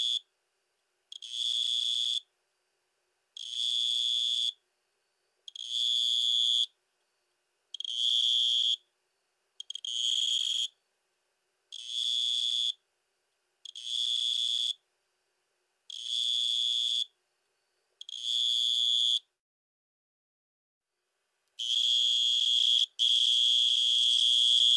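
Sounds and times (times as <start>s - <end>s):
two-spotted tree cricket Neoxabea bipunctata trilling: 0.0s - 0.3s, 1.1s - 2.3s, 3.4s - 8.9s, 9.6s - 10.8s, 11.7s - 12.8s, 13.6s - 14.8s, 15.8s - 19.4s, 21.6s - 24.7s.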